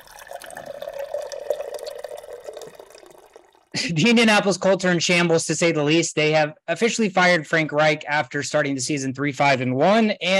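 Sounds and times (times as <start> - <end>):
water cooler bubbling and dripping: 0.0 - 3.8
speech: 3.8 - 10.3.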